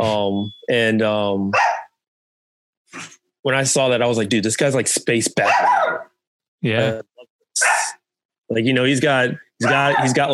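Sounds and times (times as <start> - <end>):
speech: 0.0 - 1.7, 2.9 - 10.3
dog barking: 1.5 - 2.0, 5.4 - 6.1, 7.6 - 8.0, 9.6 - 10.2.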